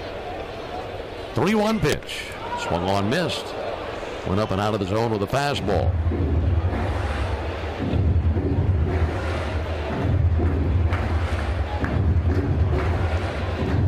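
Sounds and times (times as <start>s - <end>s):
crowd murmur in a baseball stadium in New York during a rainy night game: 0.0s - 1.3s, 2.2s - 13.8s
speech: 1.4s - 3.6s, 4.2s - 6.4s
low rumble: 5.7s - 13.8s.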